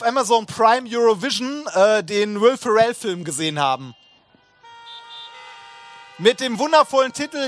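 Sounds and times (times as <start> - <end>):
speech: 0.0 - 4.0, 6.2 - 7.4
several car horns honking: 3.0 - 7.4.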